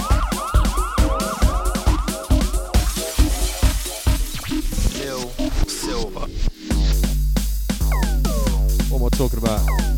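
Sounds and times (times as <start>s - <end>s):
rapid siren-like wails: 0.0s - 2.7s
pounding four-on-the-floor electronic dance beat: 0.0s - 9.9s.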